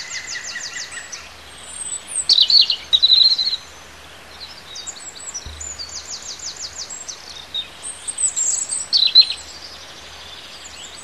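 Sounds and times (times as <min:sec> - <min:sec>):
native bird singing in a hedgerow in March: 0:00.0 - 0:11.0
low steady hum: 0:05.4 - 0:08.0.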